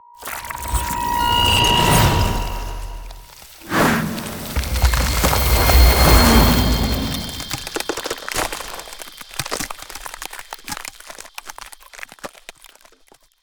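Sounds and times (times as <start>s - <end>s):
ice spell barrier effect: 0.2s - 8.6s.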